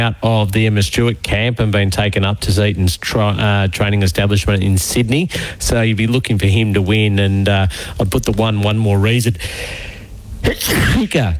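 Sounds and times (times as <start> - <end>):
speech: 0.0 - 11.3
gasping build-up before a sneeze: 5.3 - 5.7, 7.6 - 8.2, 9.3 - 11.3
sneeze: 10.4 - 11.3.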